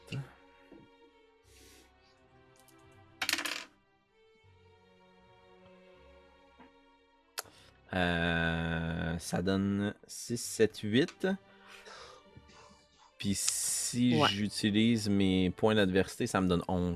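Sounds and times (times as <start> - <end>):
D8 and D4 dice tumbling across a hard surface: 3.2 - 3.7
speech: 7.9 - 8.4, 9.2 - 12.0, 13.2 - 16.9
faint voices: 14.0 - 14.5.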